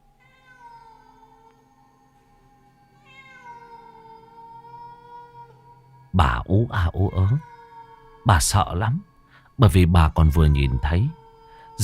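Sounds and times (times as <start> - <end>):
black cat yowling eerily at night: 0.2 - 1.6, 3.0 - 9.0, 10.0 - 11.8
speech: 6.2 - 7.5, 8.2 - 11.2.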